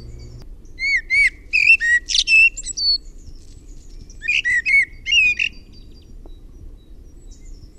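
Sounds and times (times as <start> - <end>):
low rumbling: 0.0 - 0.5
common blackbird song: 0.0 - 7.7.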